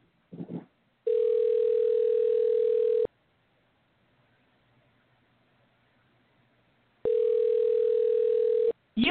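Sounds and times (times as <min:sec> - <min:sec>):
telephone tone beeps during an outgoing call: 0:01.1 - 0:03.1, 0:07.1 - 0:08.7.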